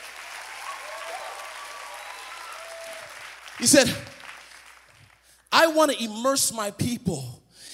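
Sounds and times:
room full of people clapping and applauding: 0.0s - 5.4s
speech: 3.6s - 4.1s, 5.6s - 7.4s.

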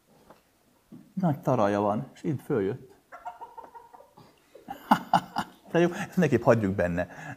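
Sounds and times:
speech: 1.2s - 2.9s, 5.7s - 7.3s
rooster with a large comb and turkey clucking: 3.0s - 4.7s
laughter: 4.6s - 6.2s.

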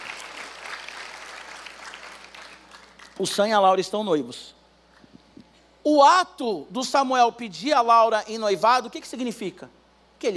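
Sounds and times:
audience applauding: 0.0s - 3.2s
speech: 3.2s - 4.6s, 5.8s - 10.3s.

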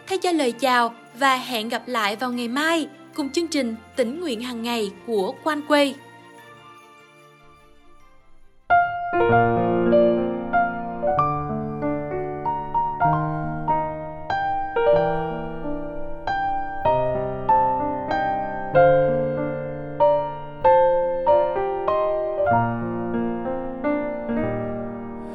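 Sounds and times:
instrumental song intro music with plucked or struck melodic notes: 0.0s - 25.3s
speech: 0.1s - 6.0s.

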